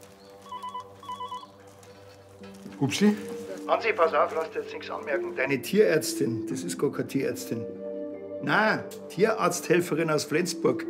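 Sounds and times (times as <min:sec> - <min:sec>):
telephone ringing in warbling bursts: 0:00.4 - 0:01.6
speech: 0:02.6 - 0:07.8, 0:08.4 - 0:10.8.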